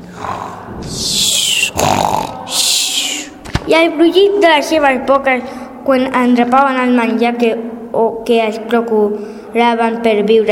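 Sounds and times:
loud rasping snores: 0.1s - 0.8s, 1.7s - 2.6s
speech: 0.2s - 1.2s, 3.7s - 10.4s.

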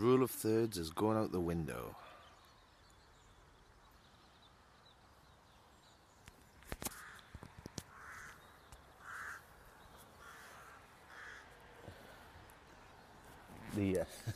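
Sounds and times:
speech: 0.0s - 2.1s
soft outdoor noise: 0.0s - 14.3s
crows cawing from their nests in a tree: 6.8s - 12.4s.

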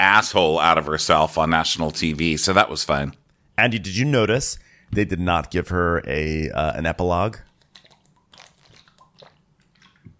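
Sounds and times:
speech: 0.1s - 7.5s
low thick gulp while drinking: 7.4s - 10.1s
wet mouth clicks of someone drinking: 7.5s - 10.1s.

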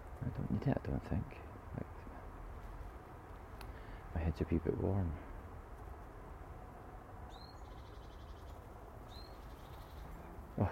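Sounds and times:
speech: 0.4s - 1.9s, 4.3s - 5.3s
female and male blackbird calls: 7.3s - 10.4s.

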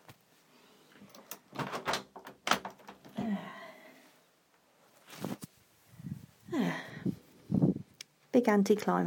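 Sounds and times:
door latch and lock clicks, clunks and rattles: 1.1s - 3.1s
door pushed shut: 1.5s - 3.0s
speech: 8.4s - 9.0s.

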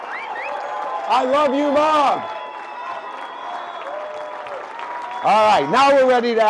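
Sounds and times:
applause: 0.0s - 6.4s
large crowd cheering and screaming: 0.0s - 6.4s
speech: 1.1s - 2.3s, 5.2s - 6.4s.

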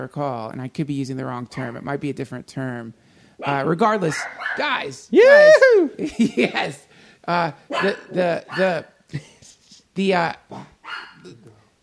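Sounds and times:
speech: 0.0s - 9.3s, 10.0s - 11.6s
dog barking whinily: 3.4s - 4.8s, 7.7s - 8.8s, 10.5s - 11.3s.

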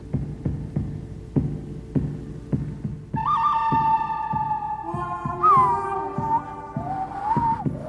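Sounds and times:
steady throbbing low drumbeat in spaghetti western style music: 0.0s - 7.8s
loud sustained whistled melody with sliding notes: 3.2s - 7.8s.

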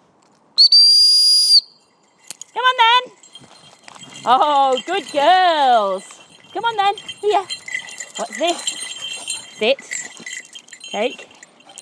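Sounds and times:
shrill whistle blast calling dogs: 0.6s - 1.8s
speech: 4.2s - 7.6s, 8.2s - 8.8s, 9.6s - 9.9s, 10.9s - 11.3s.

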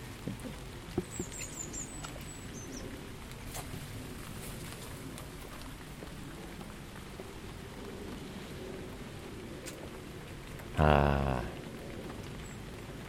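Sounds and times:
rain dripping and pattering on a surface: 0.0s - 13.0s.

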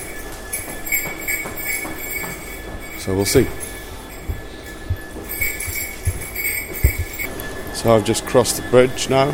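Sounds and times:
train rumbling at a busy station platform: 0.0s - 8.3s
speech: 3.1s - 3.6s, 7.8s - 9.3s.

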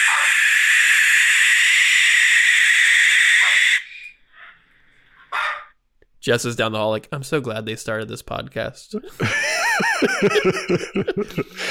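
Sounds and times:
barn owl screeching played back from an online video: 0.0s - 4.7s, 5.3s - 5.7s
speech: 6.3s - 9.4s, 10.0s - 11.6s
laughter: 9.1s - 11.6s.

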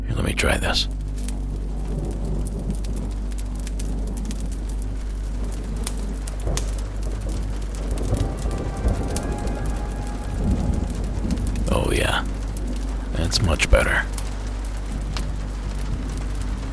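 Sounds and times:
speech: 0.1s - 1.0s, 13.3s - 14.2s
heavy rain on a cabin's tin roof: 0.9s - 16.6s.

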